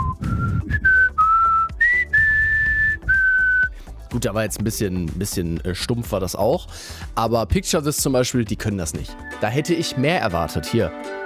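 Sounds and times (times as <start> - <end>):
person whistling a sustained melody: 0.0 - 3.8
speech: 4.1 - 11.2.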